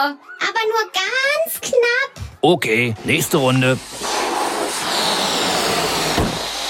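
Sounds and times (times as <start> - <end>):
speech: 0.0 - 4.1
air escaping from blown-up balloons released in a race: 3.0 - 6.6.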